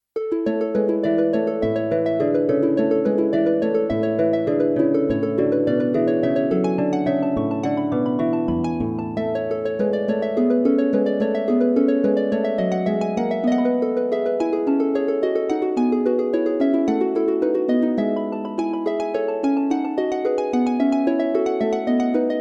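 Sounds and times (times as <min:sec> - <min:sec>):
harp interval on a Ketron AUDYA keyboard: 0:00.2 - 0:22.3.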